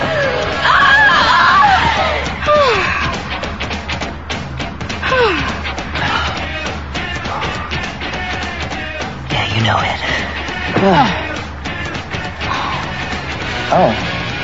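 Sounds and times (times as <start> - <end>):
woman screaming in high wavering bursts: 0.0 - 3.2, 5.0 - 5.6
noisy rumbling background: 0.0 - 14.4.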